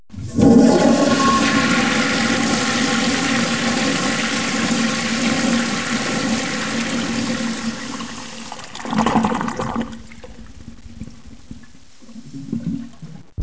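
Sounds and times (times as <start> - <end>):
WC toilet: 0.1 - 13.3.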